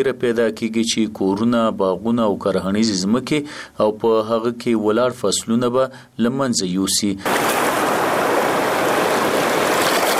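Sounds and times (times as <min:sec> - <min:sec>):
speech: 0:00.0 - 0:07.7
Kunar River flowing at high water level: 0:07.3 - 0:10.1.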